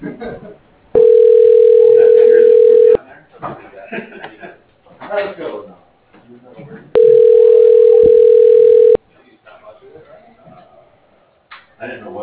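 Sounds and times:
telephone ringing tones while an automated phone system transfers a call: 1.0 - 3.0, 7.0 - 9.0.

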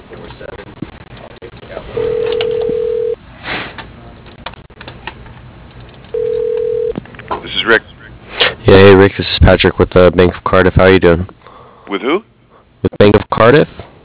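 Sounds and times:
faint narrow-band phone-line hiss: 1.9 - 3.2, 6.1 - 6.9
telephone ringback tone of a call being transferred: 2.0 - 3.2, 6.1 - 7.0
speech: 9.1 - 13.9.

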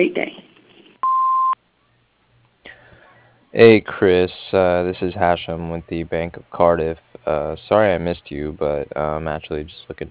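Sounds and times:
speech: 0.0 - 0.4, 3.6 - 10.0
answering machine beep signalling the start of a message: 1.0 - 1.6.

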